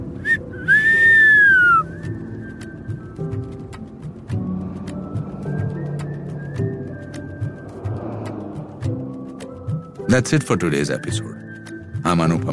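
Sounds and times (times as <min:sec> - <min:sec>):
steady music with a low busy backing: 0:00.0 - 0:12.5
short human whistle sliding downward in pitch: 0:00.2 - 0:02.1
speech: 0:10.1 - 0:11.4, 0:12.1 - 0:12.5.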